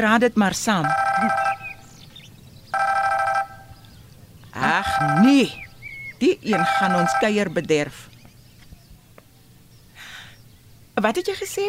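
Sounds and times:
speech: 0:00.0 - 0:01.4, 0:05.0 - 0:05.6, 0:06.2 - 0:08.1, 0:11.0 - 0:11.6
faint noise: 0:00.0 - 0:11.6
cellphone ringing with electronic trilling: 0:00.8 - 0:01.8, 0:02.7 - 0:03.8, 0:04.6 - 0:05.6, 0:06.5 - 0:07.5.

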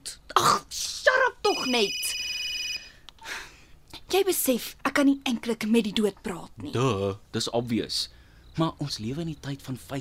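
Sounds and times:
short bright electronic telephone ring: 0:01.5 - 0:03.0
speech: 0:01.6 - 0:02.0, 0:04.1 - 0:10.0.

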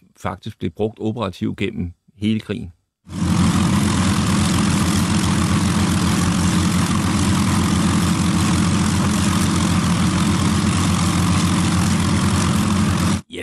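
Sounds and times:
speech: 0:00.2 - 0:03.3
twin piston engines droning on a Heinkel 111 bomber aircraft: 0:03.1 - 0:13.2.

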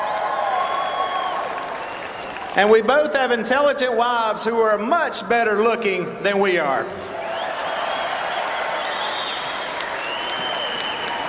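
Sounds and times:
large crowd applauding a speaker: 0:00.0 - 0:03.1, 0:07.3 - 0:11.2
whoops and whistles: 0:00.5 - 0:02.4, 0:07.2 - 0:11.2
speech: 0:02.6 - 0:07.1.

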